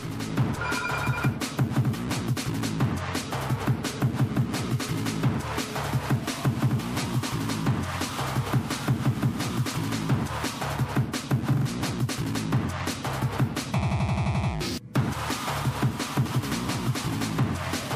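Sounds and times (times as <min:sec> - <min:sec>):
music: 0:00.0 - 0:17.9
telephone bell ringing: 0:00.6 - 0:01.5.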